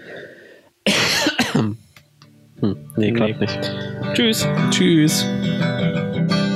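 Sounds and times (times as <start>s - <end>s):
hiss: 0.0s - 5.8s
person coughing with raspy hacks: 0.8s - 1.8s
speech: 2.7s - 6.4s.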